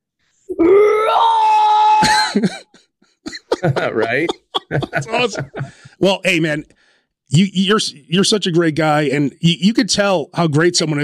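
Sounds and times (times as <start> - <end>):
young boy screaming in metal vocal style: 0.5 - 2.2
laughter: 2.0 - 6.0
speech: 2.4 - 2.6, 3.6 - 11.0
young boy breathy gasping: 3.6 - 6.0.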